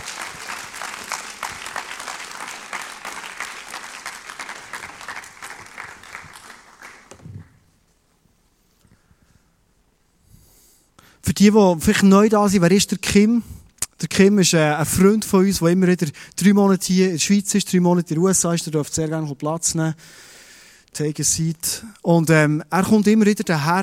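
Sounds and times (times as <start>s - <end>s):
audience applause for two people called onto a stage: 0.0s - 7.5s
faint breaths or rustles: 8.5s - 11.2s
speech: 11.4s - 13.5s, 14.1s - 20.3s, 21.0s - 23.8s.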